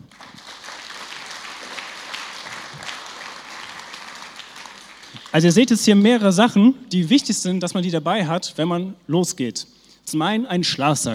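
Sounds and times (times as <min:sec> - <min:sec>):
audience applause: 0:00.0 - 0:05.8
speech: 0:05.3 - 0:11.1.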